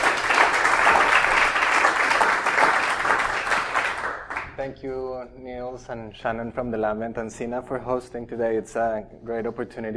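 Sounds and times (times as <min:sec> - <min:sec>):
audience applause for a speaker being introduced at a talk: 0:00.0 - 0:04.6
speech: 0:04.6 - 0:09.9.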